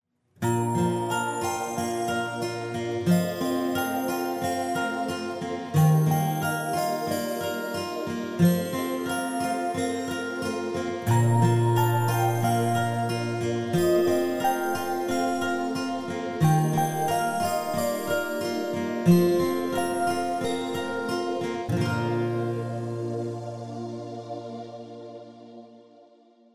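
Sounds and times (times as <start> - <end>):
instrumental music: 0.4 - 25.8.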